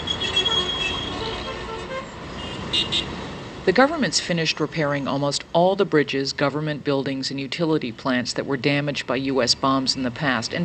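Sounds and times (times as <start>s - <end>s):
car horns honking in busy street traffic: 0.0s - 3.2s
roar of busy street traffic with engines and road noise: 0.0s - 10.6s
speech: 3.7s - 10.6s.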